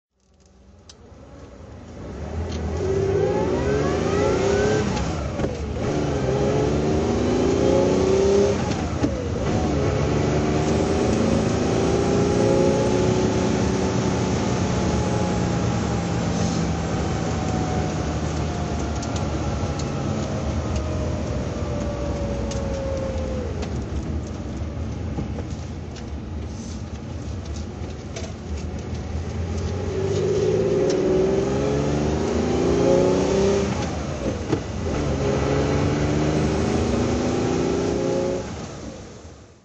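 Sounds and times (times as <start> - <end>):
Porsche 911S driving: 0.2 - 39.6.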